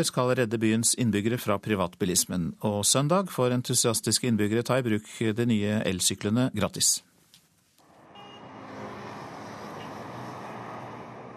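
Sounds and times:
speech: 0.0 - 7.1
roar of busy city street traffic: 7.8 - 11.3.

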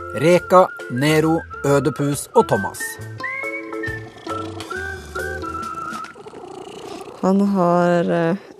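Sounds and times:
speech: 0.1 - 3.3, 7.2 - 8.5
person imitating a cat purring: 3.9 - 8.5.

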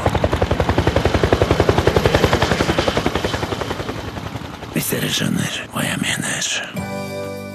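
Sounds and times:
helicopter rotor thumping: 0.0 - 4.9
speech: 5.1 - 7.4.

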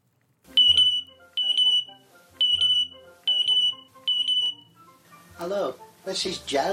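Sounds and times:
parrot mimicking smoke alarm beeps: 0.6 - 4.6
speech: 5.4 - 6.7.

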